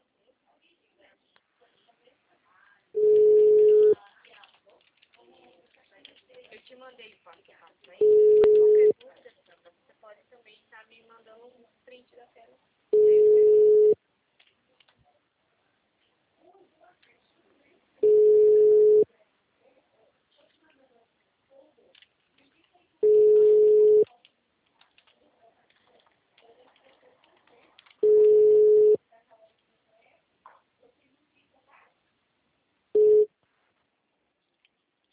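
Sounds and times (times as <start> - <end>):
telephone busy signal: 3.0 - 4.0, 8.0 - 8.9, 13.0 - 14.0, 18.0 - 19.1, 23.0 - 24.0, 28.0 - 29.0, 33.0 - 33.3
speech: 6.7 - 8.6.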